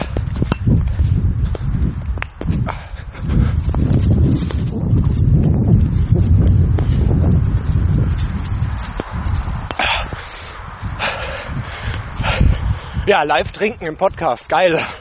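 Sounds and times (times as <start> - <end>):
rough rustling background: 0.0 - 11.0, 11.7 - 14.9
running footsteps on a trail: 0.0 - 14.9
speech: 13.1 - 14.9.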